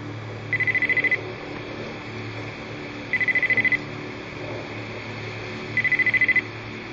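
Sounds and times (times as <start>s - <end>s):
low steady rumble: 0.0s - 6.9s
telephone ringing: 0.5s - 1.2s, 3.1s - 3.8s, 5.8s - 6.4s.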